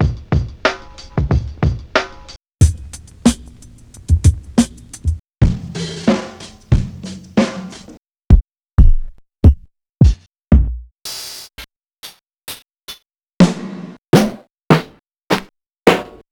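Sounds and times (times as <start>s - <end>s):
boom bap drum kit beat: 0.0s - 11.4s.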